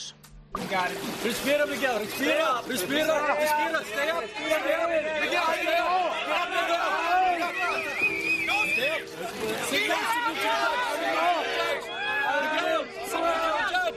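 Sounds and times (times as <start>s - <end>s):
speech: 0.5s - 11.4s
excited crowd cheering and shouting as a freediver reaches a depth record: 3.0s - 13.9s.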